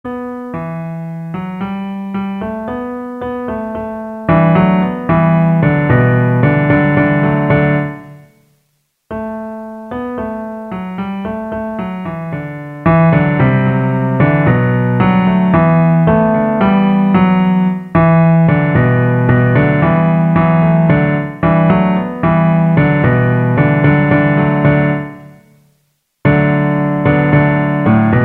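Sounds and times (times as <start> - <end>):
piano bass line: 0.1 - 8.4, 9.1 - 25.5, 26.2 - 28.2.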